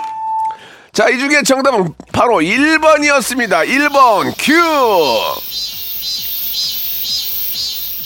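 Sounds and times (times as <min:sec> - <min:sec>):
speech: 0:01.0 - 0:05.8
cicada buzzing in a high-pitched pulsing drone: 0:03.2 - 0:08.0.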